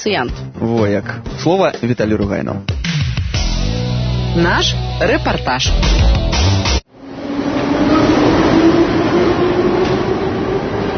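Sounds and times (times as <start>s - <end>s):
speech: 0.0s - 3.0s, 3.6s - 6.5s
metro train rumbling through Lenin Square metro station: 6.9s - 10.9s.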